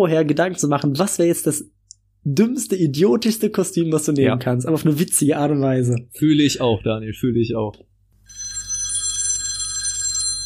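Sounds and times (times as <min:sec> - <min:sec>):
speech: 0:00.0 - 0:08.4
telephone bell ringing: 0:08.2 - 0:10.4.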